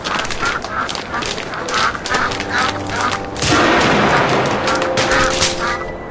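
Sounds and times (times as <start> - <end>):
duck quacking and honking: 0.0 - 5.9
rifle gunshots fired at a duck: 2.9 - 5.8.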